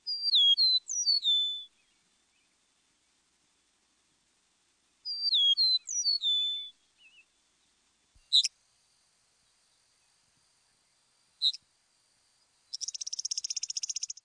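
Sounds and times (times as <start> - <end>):
eastern meadowlark: 0.0 - 3.2, 4.9 - 8.6, 9.4 - 11.6, 12.4 - 14.2.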